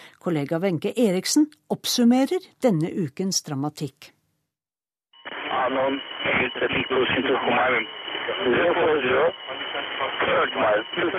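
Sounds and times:
speech: 0.2 - 4.2, 5.6 - 11.1
crackly military radio transmission from an air base: 5.2 - 11.1.

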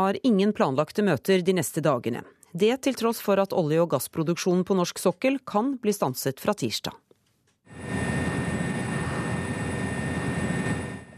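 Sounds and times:
speech: 0.0 - 7.0
helicopter engine and rotor roar by an oil platform in the North Sea: 7.7 - 11.1.

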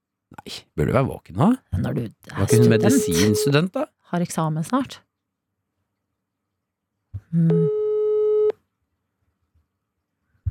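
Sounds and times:
speech: 0.4 - 5.1, 7.3 - 7.8
electronic phone ringing tone: 2.5 - 3.6.

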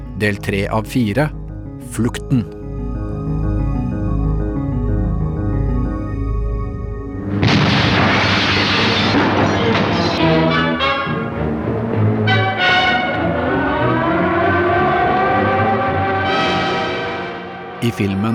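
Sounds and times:
speech: 0.2 - 2.6, 17.9 - 18.3
low rumbling drone with tonal musical layers: 2.5 - 18.3
air raid siren wailing: 2.6 - 18.3
large explosion roaring and crackling: 7.3 - 14.2
clattering burst: 7.4 - 14.4.

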